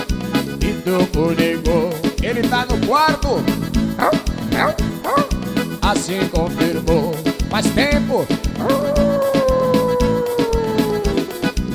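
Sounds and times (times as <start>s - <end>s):
steady rhythmic thumping: 0.2s - 11.7s
speech: 0.8s - 1.7s, 5.9s - 9.2s
dog howling in a long sinking note: 4.0s - 5.4s, 8.6s - 11.6s.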